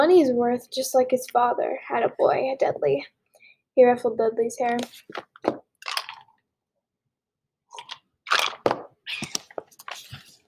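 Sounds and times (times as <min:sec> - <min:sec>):
speech: 0:00.0 - 0:03.2, 0:03.8 - 0:05.6
person sipping water: 0:07.7 - 0:10.4.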